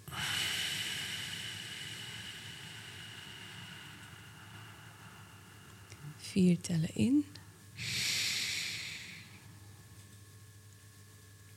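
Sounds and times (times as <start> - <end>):
slow breath through the nose in a counted breathing exercise: 0.0 - 6.2, 7.8 - 9.6
speech: 6.2 - 7.9.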